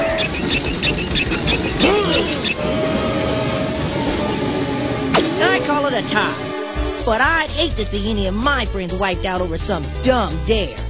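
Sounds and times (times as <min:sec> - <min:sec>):
rhythmic rattle of train wheels over the tracks: 0:00.2 - 0:06.4
train rushing past on railroad tracks: 0:00.4 - 0:08.0
speech: 0:07.0 - 0:10.8.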